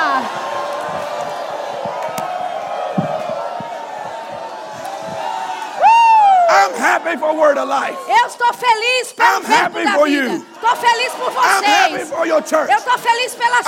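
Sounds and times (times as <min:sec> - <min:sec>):
large audience shouting and cheering: 0:00.0 - 0:13.6
whoops: 0:04.8 - 0:06.5
speech: 0:07.0 - 0:13.6.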